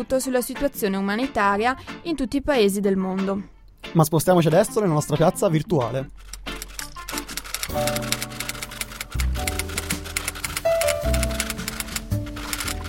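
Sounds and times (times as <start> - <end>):
speech: 0.0 - 6.3
fingers typing on a keyboard: 6.2 - 12.8.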